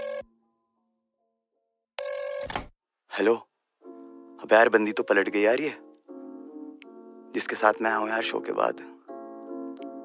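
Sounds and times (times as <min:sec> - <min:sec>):
phone ringback tone: 0:00.0 - 0:00.3, 0:02.0 - 0:02.5
speech: 0:03.2 - 0:03.5, 0:04.4 - 0:05.8, 0:07.3 - 0:09.0.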